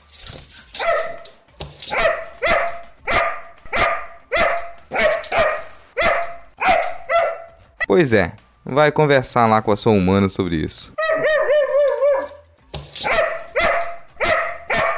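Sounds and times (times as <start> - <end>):
dog barking: 0.8 - 7.6, 11.0 - 12.4, 13.0 - 14.9
speech: 7.9 - 11.0.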